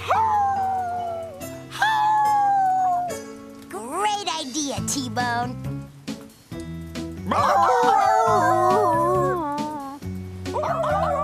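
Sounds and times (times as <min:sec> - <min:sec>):
dogs howling: 0:00.0 - 0:03.2, 0:07.3 - 0:11.2
musical backing: 0:00.0 - 0:11.2.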